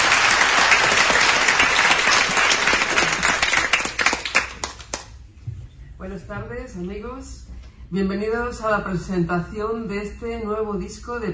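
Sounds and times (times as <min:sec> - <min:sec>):
audience applause: 0:00.0 - 0:05.1
speech: 0:06.6 - 0:11.3.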